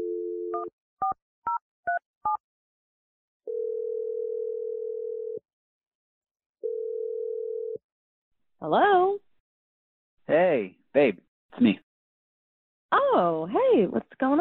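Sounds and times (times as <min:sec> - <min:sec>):
telephone keypad beeps: 0:00.6 - 0:02.4
telephone dial tone: 0:03.5 - 0:05.4, 0:06.6 - 0:07.8
speech: 0:08.6 - 0:09.2, 0:10.3 - 0:11.8, 0:13.1 - 0:14.3.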